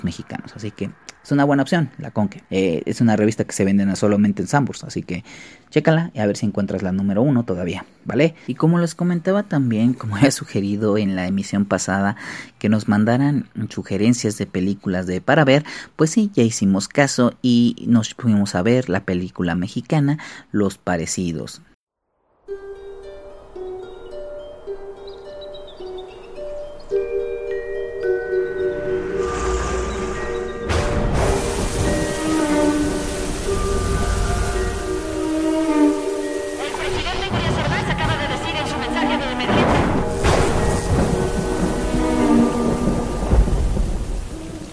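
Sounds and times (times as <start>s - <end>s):
speech: 0.0s - 21.7s
sustained musical tones: 22.5s - 44.7s
rumbling thunder: 28.6s - 44.7s
heavy rain: 29.1s - 44.7s.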